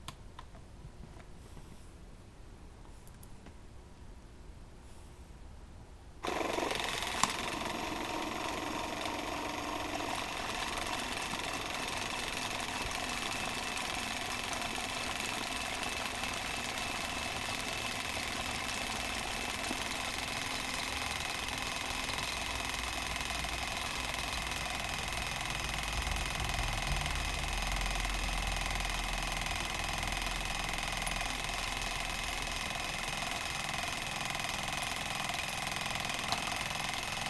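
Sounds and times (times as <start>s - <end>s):
razor cleaning station electric pump motor humming: 6.2s - 37.2s.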